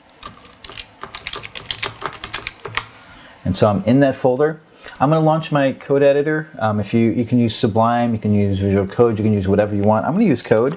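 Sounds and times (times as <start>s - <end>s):
typing a terminal command on a computer keyboard: 0.2s - 2.9s
speech: 3.4s - 10.7s.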